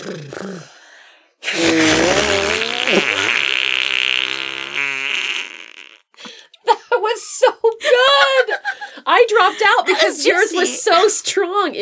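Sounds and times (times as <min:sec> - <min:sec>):
speech: 0:00.0 - 0:00.8
arm farts made by two people blowing on their arms: 0:01.4 - 0:06.1
laughter: 0:06.6 - 0:11.2.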